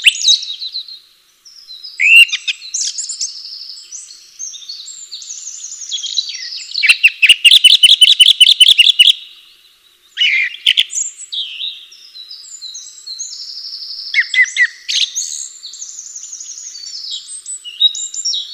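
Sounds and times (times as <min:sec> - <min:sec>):
bird song: 0:00.0 - 0:18.5.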